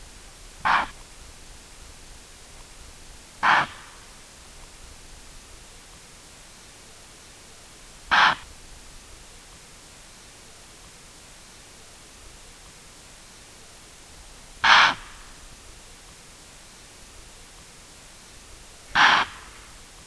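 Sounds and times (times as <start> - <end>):
loud alarm snorts of a male impala Aepyceros melampus: 0.6 - 1.0, 3.4 - 4.2, 8.0 - 8.5, 14.6 - 15.4, 18.8 - 19.8.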